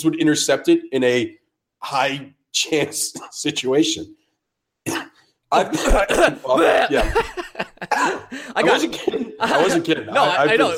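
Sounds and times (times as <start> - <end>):
speech: 0.0 - 4.2, 4.8 - 10.7
throat clearing: 4.8 - 6.4
person coughing harshly: 4.9 - 9.4
laughter: 5.6 - 10.7.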